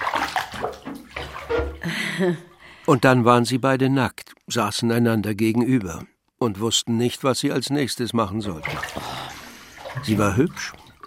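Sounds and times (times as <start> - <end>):
water pouring into a filling bathtub: 0.0 - 2.6, 8.4 - 11.0
speech: 1.8 - 9.2, 10.0 - 11.0.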